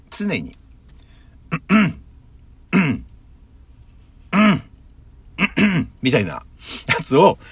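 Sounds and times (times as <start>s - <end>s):
speech: 0.2s - 0.6s, 5.7s - 7.5s
voice imitating throat clearing: 1.5s - 2.0s, 2.7s - 3.1s, 4.3s - 4.7s, 5.4s - 6.0s.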